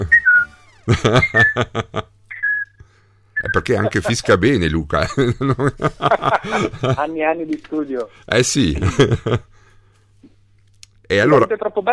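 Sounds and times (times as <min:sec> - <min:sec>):
playful whistled melody: 0:00.0 - 0:01.6, 0:02.4 - 0:02.8
laughter: 0:00.8 - 0:02.1, 0:03.7 - 0:04.4, 0:05.0 - 0:07.1, 0:08.7 - 0:09.5
speech: 0:00.8 - 0:02.1, 0:03.6 - 0:09.5, 0:11.1 - 0:11.9.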